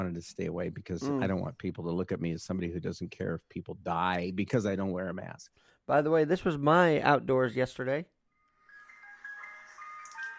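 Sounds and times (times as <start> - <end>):
speech: 0.0 - 8.2
tinny electronic ice cream truck jingle outdoors: 8.5 - 10.3.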